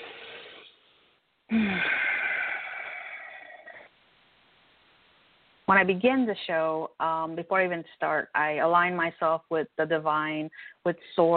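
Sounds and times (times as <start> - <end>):
person catching their breath after energetic talking: 1.5 - 3.9
speech: 5.7 - 11.3.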